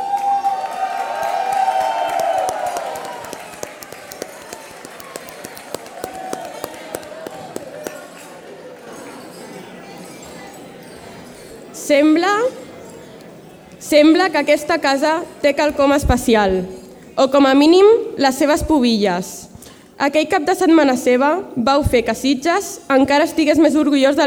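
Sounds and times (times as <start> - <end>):
crowd cheering voices: 0.0 - 11.7
busy crowd chatter: 2.3 - 24.2
glasses clinking in a toast: 7.4 - 16.0
speech: 11.9 - 12.6, 13.9 - 24.2.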